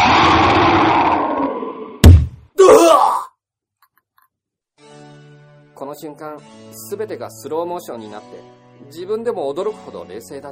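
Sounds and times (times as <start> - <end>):
tiger low growling roar sound effect: 0.0 - 2.0
speech: 5.9 - 10.5.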